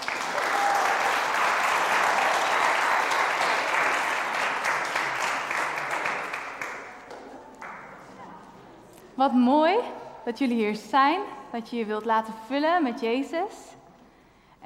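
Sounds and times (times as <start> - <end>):
audience applause: 0.0 - 7.8
speech: 9.2 - 13.8.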